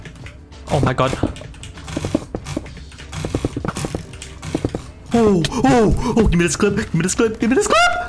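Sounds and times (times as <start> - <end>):
speech: 0.7 - 1.4, 5.2 - 8.0
rapid mouse drag clicking: 0.7 - 4.9.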